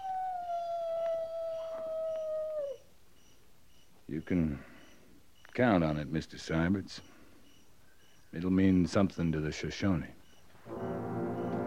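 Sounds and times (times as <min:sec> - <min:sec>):
coyote howling: 0:00.0 - 0:03.4
speech: 0:04.1 - 0:04.7, 0:05.6 - 0:07.1, 0:08.3 - 0:10.2.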